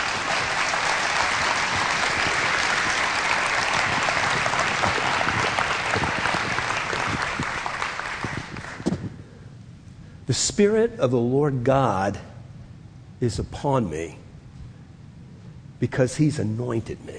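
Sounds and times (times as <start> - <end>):
large church audience applause giving a clap offering: 0.0 - 9.0
speech: 10.3 - 12.3, 13.2 - 14.2, 15.8 - 17.1.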